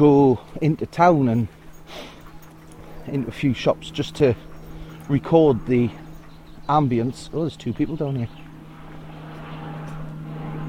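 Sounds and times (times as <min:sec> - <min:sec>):
speech: 0:00.0 - 0:02.1, 0:03.1 - 0:04.5, 0:05.1 - 0:06.0, 0:06.7 - 0:08.4
propeller airplane droning overhead outdoors: 0:00.0 - 0:10.6.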